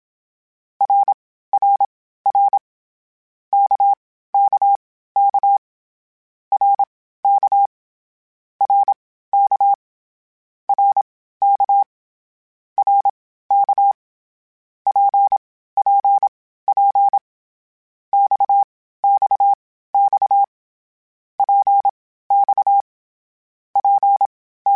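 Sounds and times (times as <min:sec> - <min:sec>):
CW Morse code groups in short runs: 0:00.8 - 0:02.6, 0:03.6 - 0:05.6, 0:06.5 - 0:07.7, 0:08.6 - 0:09.8, 0:10.7 - 0:11.9, 0:12.8 - 0:14.0, 0:14.9 - 0:17.2, 0:18.2 - 0:20.5, 0:21.4 - 0:22.8, 0:23.8 - 0:24.7.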